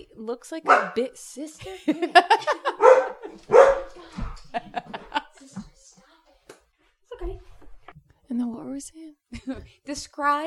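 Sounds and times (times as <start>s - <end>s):
speech: 0.2s - 5.0s, 8.6s - 10.4s
dog barking in a room: 0.7s - 1.0s, 2.6s - 4.0s
dog yipping: 0.7s - 1.0s, 2.8s - 4.0s
laughter: 1.6s - 5.6s.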